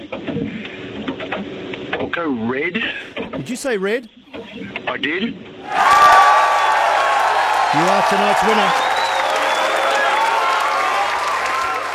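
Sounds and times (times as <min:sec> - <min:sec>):
speech: 0:02.2 - 0:06.2, 0:07.7 - 0:08.9
crowd applauding a quiz winner: 0:05.6 - 0:11.9.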